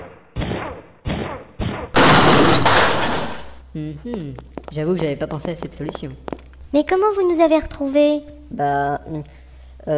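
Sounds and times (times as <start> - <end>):
door crashing with splintering and collapse: 2.0 - 3.6
speech: 3.8 - 9.9.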